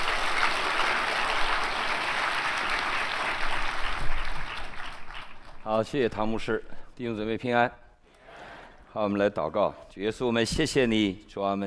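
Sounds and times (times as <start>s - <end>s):
large church audience applauding a preacher: 0.0s - 5.9s
speech: 5.7s - 7.8s, 8.9s - 11.6s.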